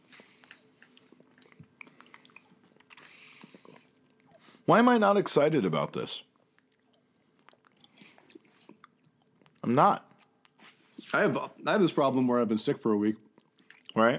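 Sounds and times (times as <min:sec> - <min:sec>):
chewing a crunchy sticky chocolate toffee macadamia snack: 0:00.0 - 0:04.7, 0:06.2 - 0:10.9, 0:13.2 - 0:14.1
speech: 0:04.7 - 0:06.3, 0:09.7 - 0:10.1, 0:11.1 - 0:13.2, 0:14.0 - 0:14.1.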